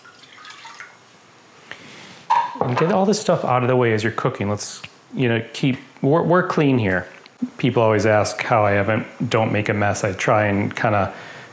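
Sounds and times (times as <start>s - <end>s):
running water from a sink tap trickling into a pot: 0.0s - 1.0s
speech: 2.6s - 11.3s.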